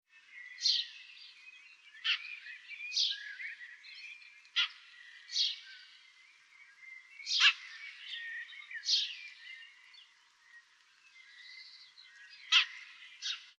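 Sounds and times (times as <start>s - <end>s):
quiet house sparrow chatter: 0.1s - 13.5s
house sparrow Passer domesticus chirping: 2.0s - 6.1s, 7.2s - 9.6s, 11.2s - 13.5s.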